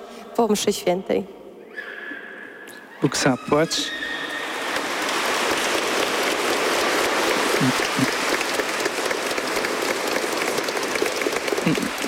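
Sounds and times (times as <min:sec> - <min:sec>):
speech: 0:00.4 - 0:01.9, 0:03.0 - 0:04.1, 0:11.7 - 0:12.0
large audience applause: 0:03.6 - 0:12.0.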